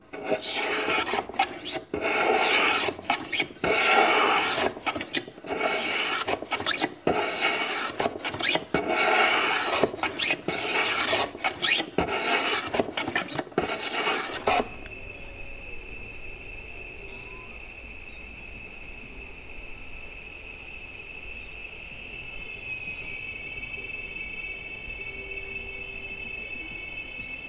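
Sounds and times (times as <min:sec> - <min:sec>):
hand tools rasping wood: 0:00.0 - 0:14.8.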